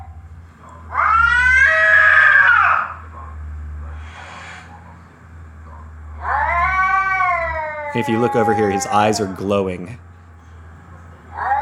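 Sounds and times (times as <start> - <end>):
cat caterwauling under a coffee table in a house: 0.9 - 3.1, 6.1 - 9.8, 11.3 - 11.6
speech: 7.9 - 10.1.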